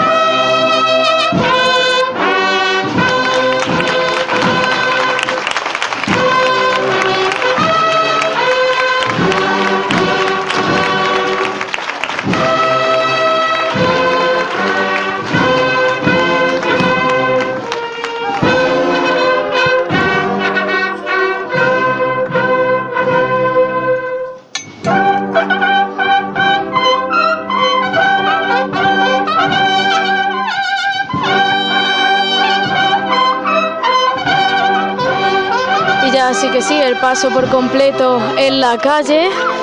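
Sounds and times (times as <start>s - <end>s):
cornet and drum band playing a processional march in the street: 0.0s - 39.6s
speech: 37.1s - 39.5s.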